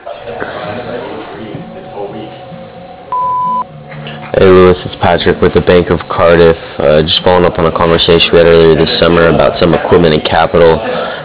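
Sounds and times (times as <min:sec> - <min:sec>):
answering machine electronic beep: 0:03.1 - 0:03.7
speech: 0:04.4 - 0:11.1.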